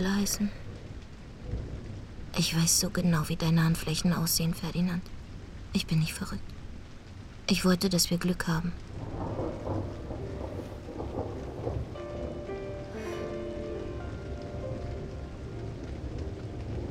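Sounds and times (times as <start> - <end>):
speech: 0.0 - 0.6, 2.3 - 6.6, 7.5 - 9.1
steady rain falling on surfaces: 0.0 - 16.9
low rumble: 9.0 - 16.9.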